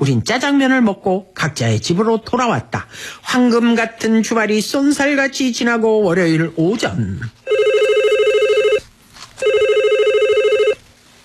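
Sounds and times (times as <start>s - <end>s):
speech: 0.0s - 7.4s
faint noise: 0.0s - 11.2s
telephone in a factory office ringing: 7.4s - 10.8s.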